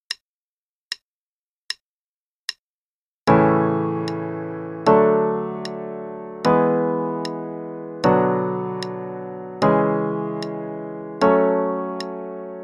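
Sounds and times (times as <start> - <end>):
primary and secondary chords in A major: 3.3 - 12.6.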